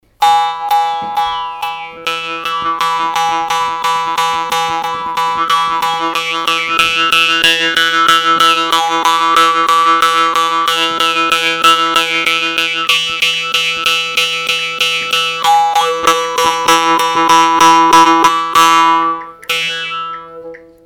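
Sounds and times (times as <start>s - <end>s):
harp note E3 at 164.81 Hz: 0.2s - 20.8s.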